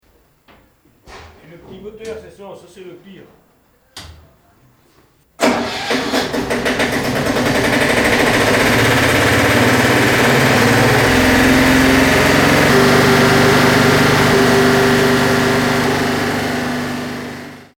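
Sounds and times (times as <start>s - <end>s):
small engine: 5.4s - 17.7s.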